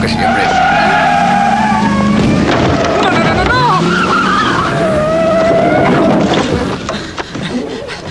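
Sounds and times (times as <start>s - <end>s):
car tire squeal dropping off a half-metre curb: 0.0s - 6.8s
car engine roar: 0.0s - 6.9s
knocks and rattles: 2.1s - 8.1s.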